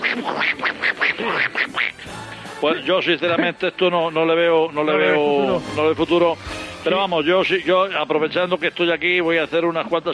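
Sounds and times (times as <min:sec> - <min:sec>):
person imitating a cartoon duck quacking: 0:00.0 - 0:02.1
speech: 0:00.2 - 0:00.6, 0:02.6 - 0:10.1.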